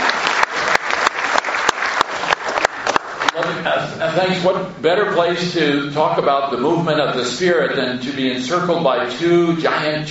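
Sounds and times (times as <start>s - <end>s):
room full of people applauding: 0.0s - 3.5s
speech: 3.6s - 10.1s.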